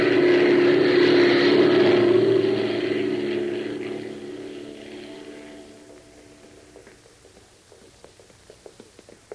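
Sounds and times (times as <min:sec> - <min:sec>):
propeller airplane engine droning, landing on a camouflaged landing strip: 0:00.0 - 0:09.3.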